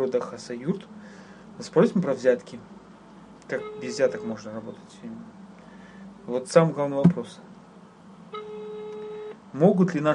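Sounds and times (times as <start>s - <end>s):
speech: 0.0s - 2.8s, 3.5s - 5.4s, 6.3s - 7.5s, 9.5s - 10.1s
faint hiss: 0.0s - 10.1s
telephone ringback tone: 3.5s - 4.4s, 8.3s - 9.4s.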